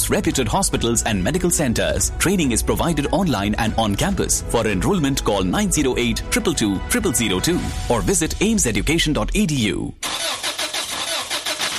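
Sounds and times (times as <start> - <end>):
speech: 0.1 - 10.2
car engine starter cranking without catching: 10.0 - 11.7.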